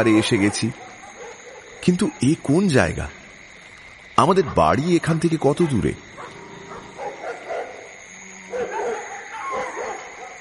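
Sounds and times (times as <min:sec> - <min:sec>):
speech: 0:00.0 - 0:01.0, 0:01.8 - 0:03.2, 0:04.2 - 0:06.0
dogs quarreling and barking: 0:00.0 - 0:02.2, 0:05.6 - 0:10.3.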